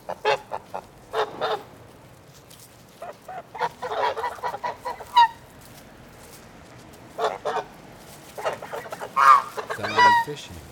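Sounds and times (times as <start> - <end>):
goose honking and cackling: 0.0 - 1.6, 3.0 - 5.4, 7.2 - 7.7, 8.4 - 10.5
quiet low hiss: 0.0 - 10.7.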